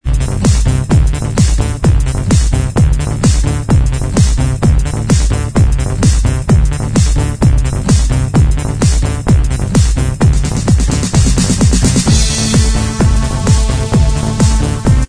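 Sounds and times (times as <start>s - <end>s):
extended dance remix: 0.0s - 15.0s.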